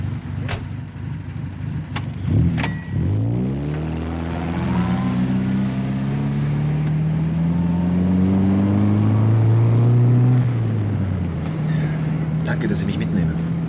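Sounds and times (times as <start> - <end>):
car engine pulling away and accelerating: 0.0 - 13.6
car doors shutting: 0.4 - 0.9.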